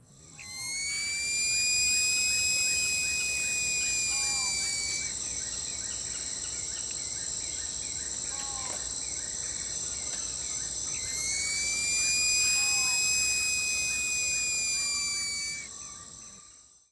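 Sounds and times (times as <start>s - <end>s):
sloth screaming: 0.4s - 5.1s, 11.0s - 15.7s.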